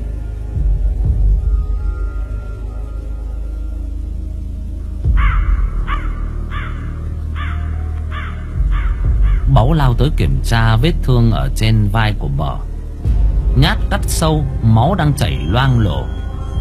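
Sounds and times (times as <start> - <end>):
low rumbling background: 0.0 - 16.5
crow cawing: 5.1 - 9.5
speech: 9.7 - 12.7, 13.6 - 16.2.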